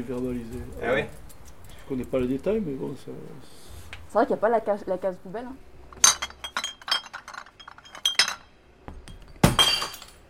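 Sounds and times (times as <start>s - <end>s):
speech: 0.0s - 1.3s, 1.9s - 6.1s
glass alcohol bottles clinking into a recycling bin: 6.0s - 10.2s
glass crashing in a recycling bin: 6.0s - 10.2s.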